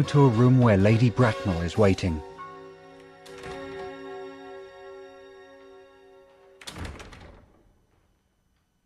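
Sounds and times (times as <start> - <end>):
speech: 0.0 - 2.3
steady sustained musical tone: 0.0 - 6.6
many doors opened at once along a corridor: 6.6 - 8.0.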